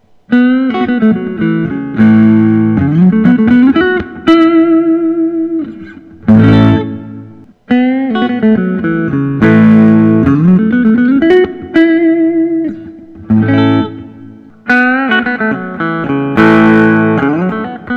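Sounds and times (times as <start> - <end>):
Collings I-35 Deluxe guitar: 0.0 - 17.9.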